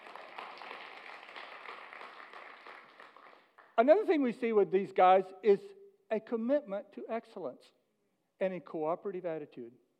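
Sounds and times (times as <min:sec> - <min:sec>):
room full of people applauding: 0:00.0 - 0:03.6
speech: 0:03.8 - 0:07.8, 0:08.4 - 0:09.8.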